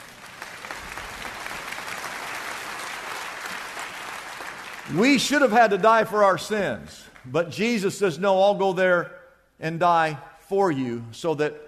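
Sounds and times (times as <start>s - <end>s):
crowd applauding: 0.0s - 5.8s
speech: 4.9s - 11.6s.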